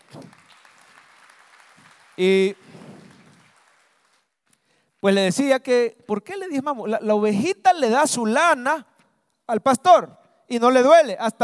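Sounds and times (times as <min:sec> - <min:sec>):
congregation clapping: 0:00.0 - 0:04.4
speech: 0:02.2 - 0:02.6, 0:05.0 - 0:08.9, 0:09.5 - 0:11.4.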